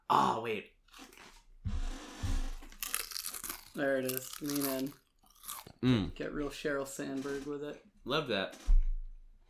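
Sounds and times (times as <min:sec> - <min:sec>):
speech: 0:00.1 - 0:01.1, 0:03.8 - 0:05.0, 0:05.8 - 0:08.8
barbecue-flavored potato chip crunching: 0:02.6 - 0:05.8
chewing potato chip: 0:02.7 - 0:05.8.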